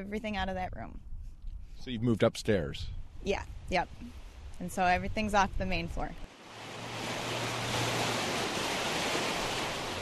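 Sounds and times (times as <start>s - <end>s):
speech: 0.0s - 1.1s, 1.8s - 6.7s
river water rushing at a confluence: 6.3s - 10.0s.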